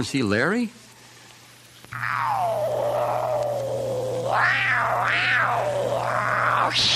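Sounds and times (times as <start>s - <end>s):
black cat meowing: 1.9s - 6.9s.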